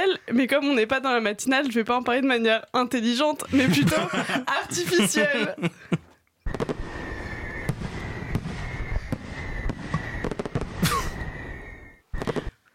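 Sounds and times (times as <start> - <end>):
speech: 0.2 - 6.0
laughter: 3.4 - 6.1
fireworks bursting with sharp bangs and crackles: 6.5 - 12.6.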